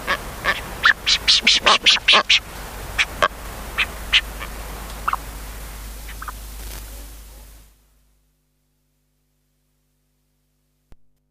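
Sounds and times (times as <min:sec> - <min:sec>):
brown booby honking: 0:00.0 - 0:07.6.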